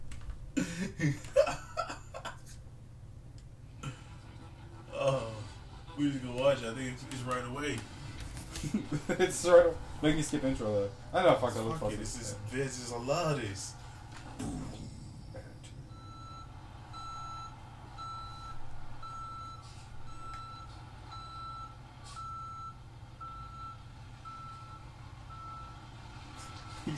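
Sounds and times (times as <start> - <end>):
laughter: 0.6 - 2.6, 8.5 - 9.8
speech: 1.0 - 1.3, 6.0 - 8.0, 8.6 - 13.8, 14.4 - 14.8
beer truck high backup beeps: 15.9 - 25.8.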